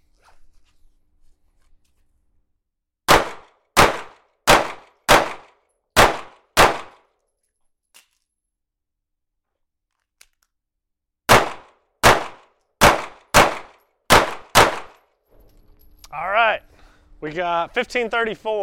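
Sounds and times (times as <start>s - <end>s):
pistol gunshots in a timed drill: 3.1s - 7.0s, 11.3s - 15.0s
speech: 16.1s - 18.6s.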